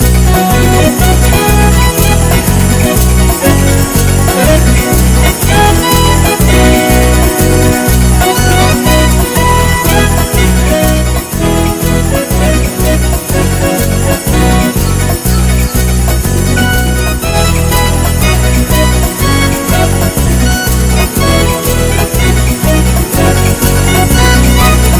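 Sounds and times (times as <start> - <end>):
fast samba music: 0.0 - 24.9.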